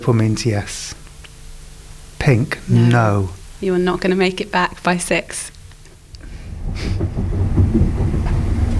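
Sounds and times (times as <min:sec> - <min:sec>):
speech: 0:00.0 - 0:01.0, 0:02.3 - 0:05.6, 0:06.8 - 0:07.2
train rumbling into a station: 0:06.2 - 0:08.7.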